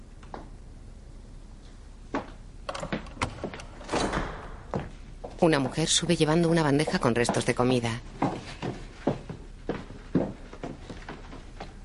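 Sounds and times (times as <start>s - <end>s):
glass-paned door clicks and knocks in an old house: 2.7s - 4.9s
speech: 5.4s - 8.3s.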